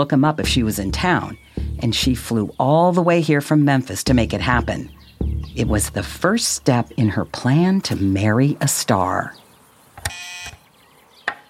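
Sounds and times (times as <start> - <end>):
speech: 0.0 - 9.4
door entry buzzer: 10.0 - 10.6.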